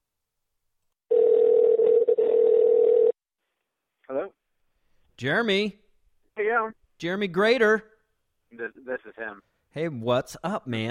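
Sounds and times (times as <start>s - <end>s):
telephone dial tone while placing a call: 1.1s - 3.2s
speech: 5.2s - 5.8s, 6.4s - 7.9s, 8.5s - 10.8s.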